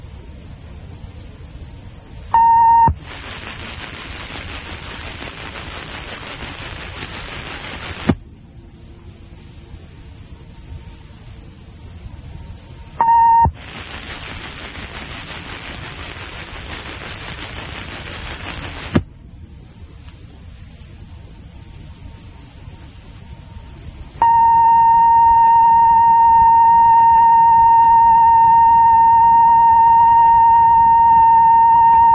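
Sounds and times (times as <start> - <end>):
quieter hum: 0.0 - 32.1
loud harsh static-like buzzing of an Emergency Action Notification System test: 1.8 - 8.2, 9.1 - 32.1
short electronic beep of an Emergency Action Notification System test: 2.4 - 3.0, 13.0 - 13.6, 24.2 - 32.1.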